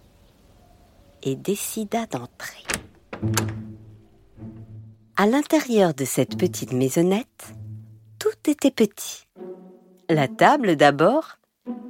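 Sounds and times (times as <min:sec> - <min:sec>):
speech: 0:01.2 - 0:03.6, 0:05.2 - 0:07.6, 0:08.4 - 0:09.2, 0:10.1 - 0:11.8
knocking on a wooden door: 0:02.7 - 0:04.8.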